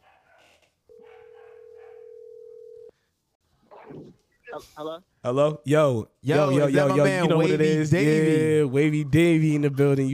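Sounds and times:
outgoing phone call ringback tone: 2.0 - 2.9
speech: 4.5 - 10.1.

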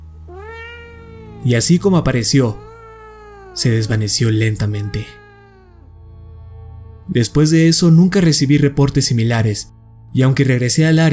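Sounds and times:
eerie drawn-out cat meow: 0.0 - 6.2
speech: 1.4 - 2.7, 3.6 - 5.2, 7.1 - 11.1.

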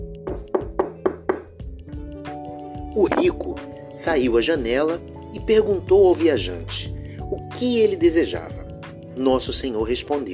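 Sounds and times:
firm knocks on a wooden door: 0.2 - 1.7
speech: 2.9 - 8.6, 9.2 - 10.3.

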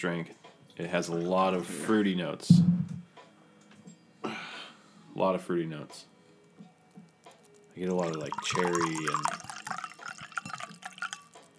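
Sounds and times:
speech: 0.0 - 2.8, 5.2 - 6.1, 7.8 - 9.4
wine pouring into a glass: 7.8 - 11.5.

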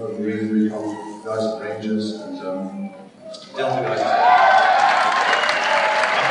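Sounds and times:
speech: 0.0 - 4.4
crowd applauding: 3.6 - 6.2.

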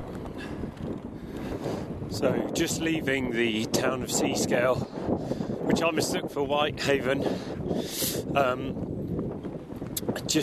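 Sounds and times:
strong coastal wind buffeting the microphone: 0.0 - 10.4
speech: 0.8 - 8.9.

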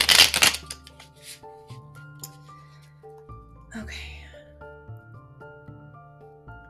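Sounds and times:
tarot cards being shuffled: 0.0 - 2.5
speech: 3.8 - 4.2.

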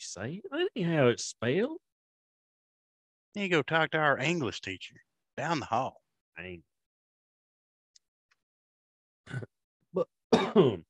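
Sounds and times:
speech: 0.1 - 1.9, 3.4 - 6.7, 9.3 - 10.8
throaty coughs: 9.2 - 10.8.

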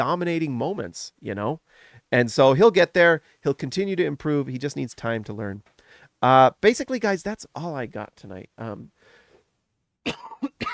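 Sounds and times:
speech: 0.0 - 9.0, 10.0 - 10.7
soft breathy inhale: 1.7 - 2.1, 5.8 - 6.2, 9.0 - 9.5
person coughing: 10.0 - 10.7.

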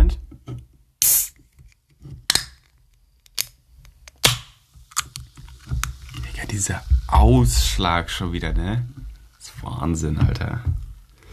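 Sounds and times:
pink grapefruit drink container opened with a pop and fizzy hiss: 1.0 - 6.2
speech: 6.5 - 9.0, 9.7 - 10.8.

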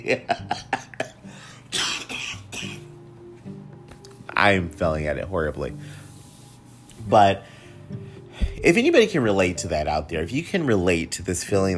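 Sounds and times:
speech: 0.0 - 0.8, 4.4 - 5.9, 7.1 - 7.5, 8.6 - 11.7
person coughing: 0.8 - 2.9
throat clearing: 1.7 - 2.8.

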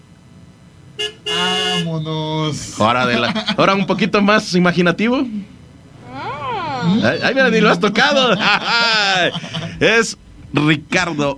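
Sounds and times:
car horn honking: 1.0 - 2.1
speech: 1.0 - 5.5, 6.9 - 11.3
laughter: 2.8 - 4.2, 6.1 - 10.2.

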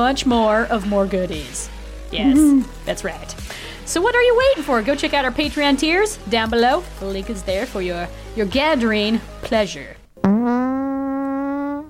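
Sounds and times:
speech: 0.0 - 10.6
long tonal fart: 10.2 - 11.8.

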